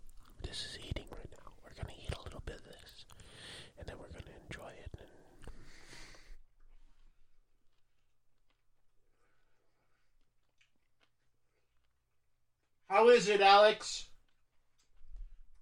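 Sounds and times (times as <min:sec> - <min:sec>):
moist chewing of a garlic-flavored snack: 0:00.0 - 0:12.8, 0:14.2 - 0:15.6
soft whispered talk: 0:00.4 - 0:05.3
speech: 0:13.0 - 0:14.1.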